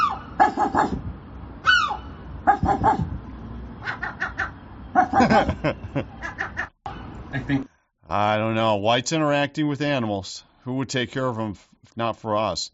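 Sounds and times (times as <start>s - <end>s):
seagull making short harsh dog-like barking calls: 0.0s - 1.0s, 1.6s - 3.1s, 3.8s - 5.4s
speech: 2.7s - 3.1s, 5.1s - 6.2s, 7.5s - 12.7s
laughter: 5.1s - 6.2s.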